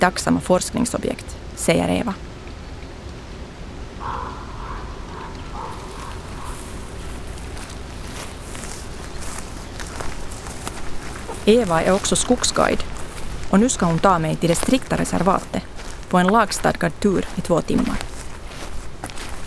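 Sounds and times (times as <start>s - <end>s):
speech: 0.0s - 2.3s, 11.5s - 12.9s, 13.5s - 18.1s
hiss: 0.0s - 19.4s
footsteps walking across yellow fields outdoors in Białowieża: 5.3s - 19.4s.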